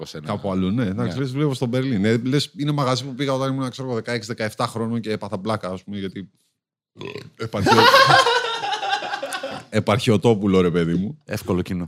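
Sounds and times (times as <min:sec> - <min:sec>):
speech: 0:00.0 - 0:08.4, 0:09.7 - 0:11.8
person burping: 0:07.0 - 0:07.8
laughter: 0:07.6 - 0:09.7.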